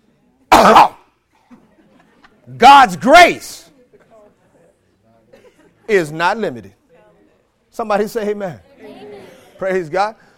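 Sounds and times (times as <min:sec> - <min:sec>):
person coughing: 0:00.5 - 0:01.6
speech: 0:00.6 - 0:00.9, 0:02.6 - 0:03.6, 0:05.9 - 0:06.8, 0:07.8 - 0:08.7, 0:09.6 - 0:10.2
laughter: 0:03.7 - 0:06.1, 0:08.5 - 0:09.9.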